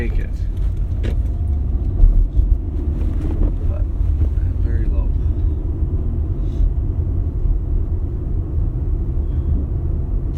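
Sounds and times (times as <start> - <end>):
road and engine drone inside a moving car: 0.0 - 10.3.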